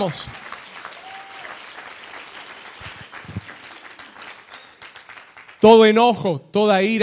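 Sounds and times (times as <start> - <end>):
speech: 0.0 - 0.5, 5.6 - 7.0
audience applauding loudly: 0.0 - 6.0
whistle or cheer: 0.6 - 5.0.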